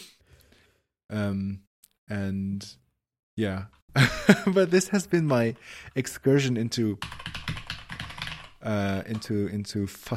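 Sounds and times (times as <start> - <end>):
speech: 1.1 - 2.8, 3.4 - 7.2, 8.6 - 10.1
rapid typing on a computer keyboard: 7.0 - 9.4.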